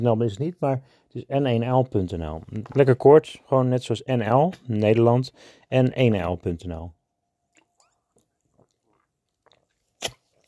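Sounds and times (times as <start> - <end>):
speech: 0.0 - 7.0
person sipping a drink: 7.5 - 10.4.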